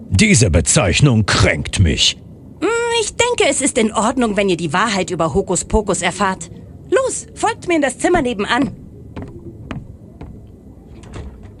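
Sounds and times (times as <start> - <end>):
speech: 0.2 - 2.2, 3.0 - 8.8
mechanical workshop door grinding open: 9.2 - 11.5
sharp clicks and clunks: 9.2 - 11.5.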